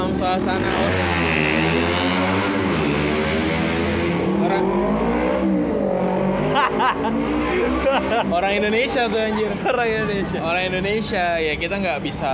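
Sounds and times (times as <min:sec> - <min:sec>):
car engine revving: 0:00.0 - 0:09.4
speech: 0:00.2 - 0:02.2, 0:06.8 - 0:12.3
laughter: 0:06.4 - 0:10.7.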